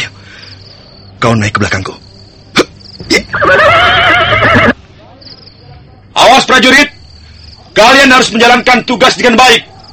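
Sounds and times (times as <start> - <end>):
speech: 1.2 - 2.0, 3.1 - 4.7, 6.5 - 6.9, 7.8 - 9.7
horse neighing: 3.1 - 4.8.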